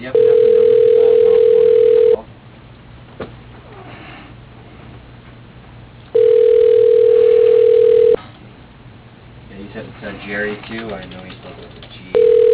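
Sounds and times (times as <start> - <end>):
telephone line tones as a call connects: 0.0 - 2.2, 6.1 - 8.2, 12.2 - 12.5.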